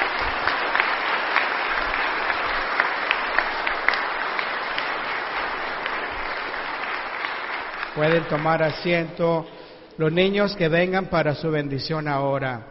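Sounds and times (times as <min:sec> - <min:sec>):
audience applauding: 0:00.0 - 0:09.2
speech: 0:08.0 - 0:12.6.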